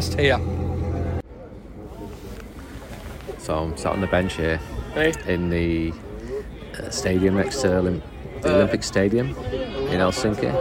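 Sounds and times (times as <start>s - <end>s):
speech: 0.0s - 0.6s, 3.5s - 6.1s, 6.8s - 10.5s
boat engine rumbling in Helsinki Harbour: 0.0s - 1.3s
faint murmuring voices outdoors: 0.8s - 10.5s.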